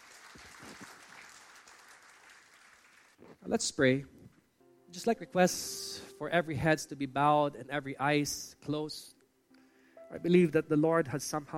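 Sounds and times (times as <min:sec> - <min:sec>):
church audience clapping: 0:00.0 - 0:03.4
speech: 0:03.4 - 0:04.2, 0:05.0 - 0:09.2, 0:10.1 - 0:11.5.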